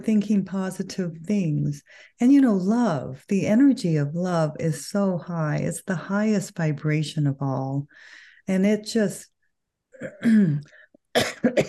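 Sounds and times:
speech: 0.0 - 9.3, 10.0 - 11.6
person coughing while recovering from a lingering cough: 10.0 - 11.6.

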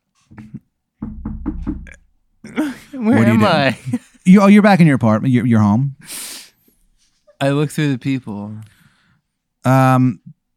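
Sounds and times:
knocking on a door: 1.0 - 2.0
speech: 2.6 - 6.2, 7.4 - 8.7, 9.6 - 10.2.

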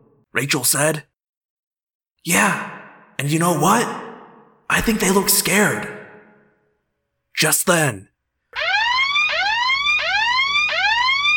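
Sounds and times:
speech: 0.3 - 1.1, 2.2 - 4.0, 4.7 - 6.0, 7.4 - 8.1
alarm siren wailing in rising sweeps: 8.5 - 11.3.

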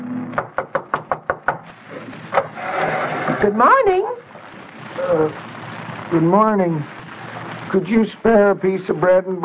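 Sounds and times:
firm knocking on a back door: 0.4 - 1.7
speech: 3.4 - 4.2, 5.1 - 5.5, 6.1 - 6.9, 7.7 - 9.4.

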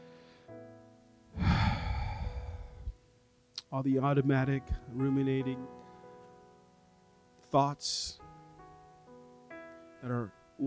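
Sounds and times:
deep exhale during a guided breathing exercise: 1.4 - 3.0
speech: 3.7 - 5.8, 7.5 - 8.2, 10.0 - 10.6.

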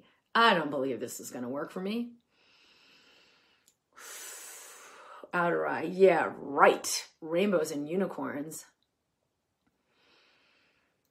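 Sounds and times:
speech: 0.4 - 2.2, 5.3 - 8.7
breath in and out during a tapping exercise on the inner eye: 2.3 - 5.3, 9.7 - 11.1.

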